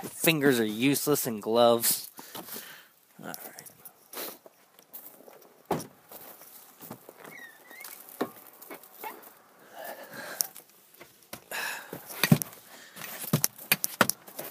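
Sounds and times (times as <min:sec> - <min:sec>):
speech: 0:00.0 - 0:02.6, 0:03.2 - 0:03.5
rustling: 0:00.0 - 0:14.4
footsteps crunching on packed snow: 0:04.1 - 0:09.4, 0:12.4 - 0:14.4.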